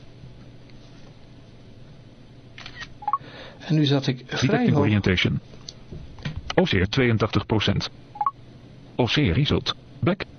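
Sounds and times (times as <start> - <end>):
steady low hum: 0.0 - 10.3
phone camera shutter click photographing a paper page: 2.6 - 2.9
speech: 3.7 - 5.6, 6.6 - 8.2, 9.0 - 10.3.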